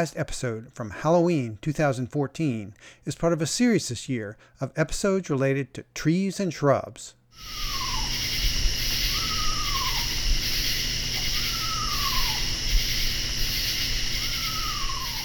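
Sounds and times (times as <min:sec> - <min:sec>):
speech: 0:00.0 - 0:07.9
chorus of crickets and insects: 0:07.4 - 0:15.2
eastern screech owl giving descending whinnying calls: 0:07.4 - 0:15.2.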